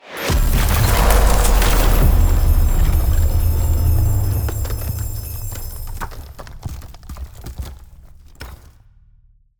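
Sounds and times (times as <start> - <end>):
ice spell summoning an ally: 0.0 - 6.4.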